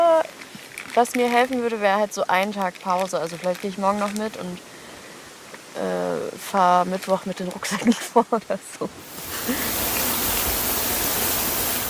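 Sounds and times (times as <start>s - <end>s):
speech: 1.0s - 4.7s, 5.8s - 9.8s
rushing waterfall in Anhausen Germany: 8.9s - 11.8s.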